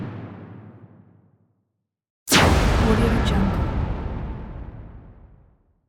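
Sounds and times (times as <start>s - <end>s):
trailer hit: 2.3s - 5.6s.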